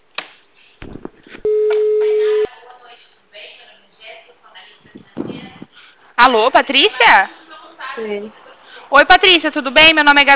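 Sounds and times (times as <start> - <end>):
telephone ringback tone while placing a call: 1.5 - 2.5
speech: 6.2 - 7.4, 8.0 - 10.3.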